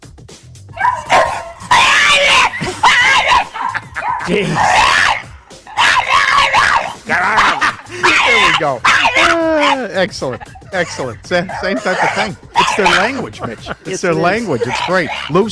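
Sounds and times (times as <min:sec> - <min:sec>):
French bulldog whining and howling: 0:00.8 - 0:09.9, 0:10.9 - 0:13.2
laughter: 0:01.0 - 0:05.3, 0:06.0 - 0:15.5
speech: 0:04.3 - 0:05.1, 0:08.6 - 0:15.5.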